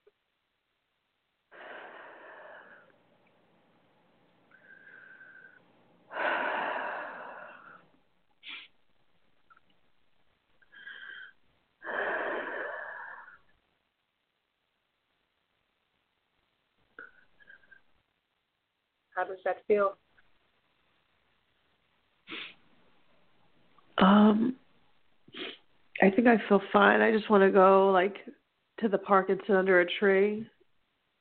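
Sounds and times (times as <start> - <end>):
deep wheezy breaths: 1.5 - 3.0, 4.5 - 8.8, 10.6 - 13.5
speech: 19.2 - 20.0, 26.0 - 30.5.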